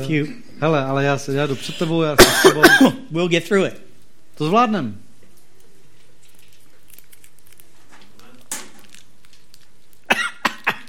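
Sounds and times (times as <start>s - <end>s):
speech: 0.0s - 3.8s, 4.4s - 5.0s
harsh coughing: 2.2s - 3.0s, 10.1s - 10.8s.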